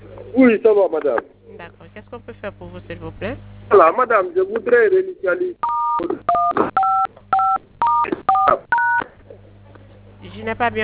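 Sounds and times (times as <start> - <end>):
speech: 0.3 - 1.4, 2.1 - 6.9, 7.8 - 9.0, 10.2 - 10.8
telephone keypad DTMF tones from buttons being pressed: 5.6 - 9.1.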